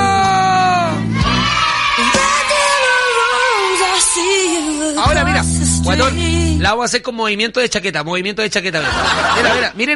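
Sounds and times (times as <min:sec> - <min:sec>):
group of voices shouting and yelling: 0:00.0 - 0:04.8
speech: 0:05.8 - 0:09.9
laughter: 0:08.7 - 0:09.9.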